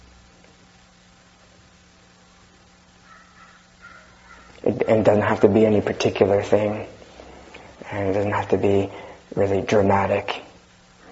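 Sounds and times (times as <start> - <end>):
hiss: 0.0 - 11.0
faint crow-like bird calls: 3.0 - 4.6
speech: 4.6 - 7.0, 7.9 - 10.4.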